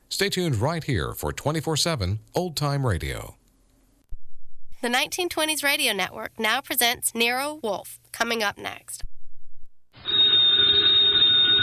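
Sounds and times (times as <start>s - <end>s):
speech: 0.2s - 3.4s, 4.8s - 9.1s
old telephone bell ringing: 10.0s - 11.6s.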